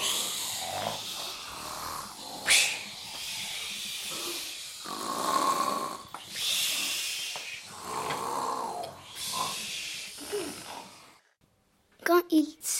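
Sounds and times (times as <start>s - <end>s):
person imitating snoring with breathy snores and hissing exhales: 0.0s - 11.2s.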